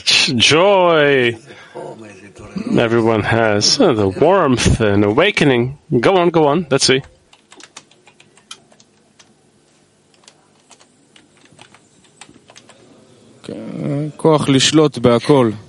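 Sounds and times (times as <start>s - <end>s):
speech: 0.0s - 7.1s, 13.5s - 15.6s
fingers typing on a computer keyboard: 7.0s - 9.4s, 10.1s - 12.8s.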